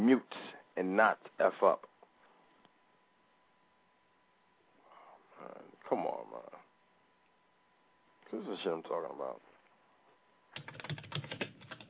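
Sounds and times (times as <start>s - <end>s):
speech: 0.1s - 1.9s, 5.4s - 6.6s, 8.3s - 9.5s, 10.6s - 11.4s
fast typing on a computer keyboard: 10.6s - 11.8s.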